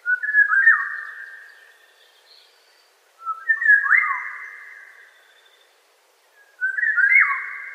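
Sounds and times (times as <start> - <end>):
Eurasian golden oriole singing fluting whistled phrases: 0.0 - 1.2, 3.2 - 4.6, 6.4 - 7.7.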